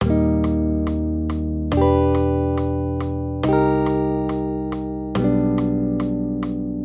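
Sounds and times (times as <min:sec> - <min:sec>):
major triad accompaniment with root movement of four semitones: 0:00.0 - 0:06.8.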